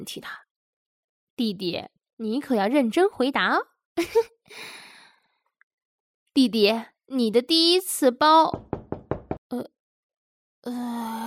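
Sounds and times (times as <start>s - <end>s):
speech: 0.0s - 0.4s, 1.4s - 4.8s, 6.4s - 8.8s, 9.5s - 9.8s, 10.6s - 11.2s
knocking on a door: 8.5s - 9.4s.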